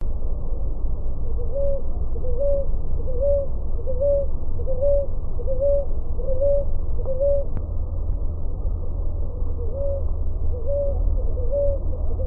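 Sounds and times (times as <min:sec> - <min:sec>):
low rumble: 0:00.0 - 0:12.2
Ruddy ground dove cooing: 0:01.2 - 0:07.6, 0:09.2 - 0:12.2.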